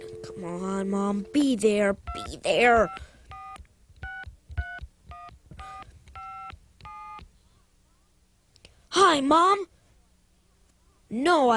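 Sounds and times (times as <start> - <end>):
telephone keypad dialing tones: 0.0 - 1.5, 2.1 - 7.2
speech: 0.4 - 3.1, 9.1 - 9.7, 11.1 - 11.5.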